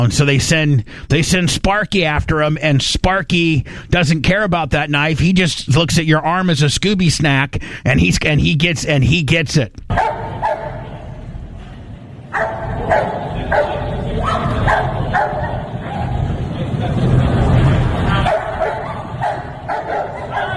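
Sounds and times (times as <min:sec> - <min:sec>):
speech: 0:00.0 - 0:10.0
police dog barking aggressively: 0:09.9 - 0:11.0, 0:12.3 - 0:16.3, 0:18.1 - 0:20.5
vehicle idling: 0:10.4 - 0:20.5.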